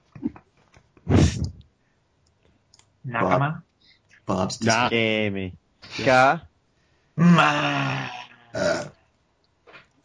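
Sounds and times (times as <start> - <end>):
speech: 3.1 - 3.6, 4.3 - 6.5, 7.2 - 8.9
person burping: 7.2 - 9.0.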